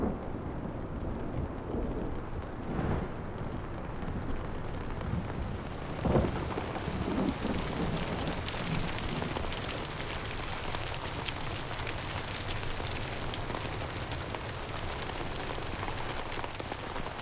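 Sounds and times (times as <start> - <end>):
low rumbling thunder: 0.0 - 9.9
steady rain pouring: 0.0 - 17.2.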